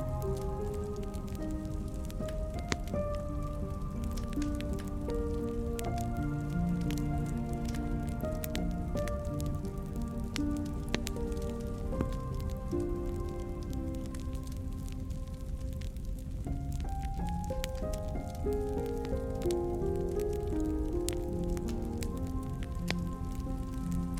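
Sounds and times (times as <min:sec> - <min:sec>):
fire crackling and popping: 0:00.0 - 0:24.1
soft music: 0:00.0 - 0:24.1.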